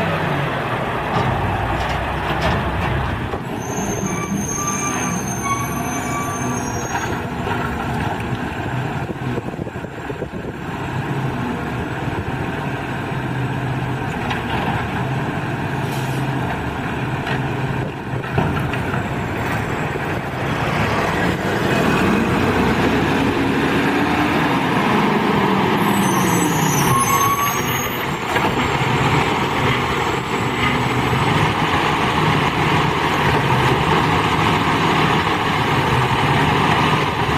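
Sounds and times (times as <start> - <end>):
garbage truck heavy engine rumbling: 0.0 - 37.3
high metallic squeals: 3.5 - 7.2, 25.8 - 28.2.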